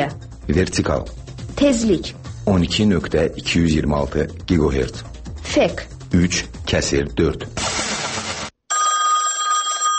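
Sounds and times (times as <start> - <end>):
speech: 0.0 - 7.6
burst of broad noise: 7.6 - 8.6
telephone ringing with a bright buzzy electronic tone: 8.7 - 9.9.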